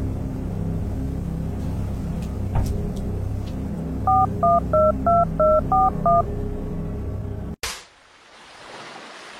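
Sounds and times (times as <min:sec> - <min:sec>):
low steady rumble: 0:00.0 - 0:07.6
electronic telephone keypad tones dialing a number: 0:04.1 - 0:06.2.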